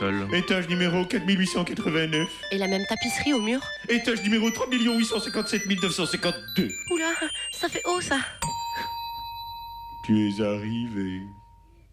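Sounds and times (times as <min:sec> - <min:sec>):
speech: 0:00.0 - 0:08.6, 0:10.1 - 0:11.4
voice answering: 0:02.1 - 0:09.0
doorbell ding-dong chime: 0:02.2 - 0:11.8.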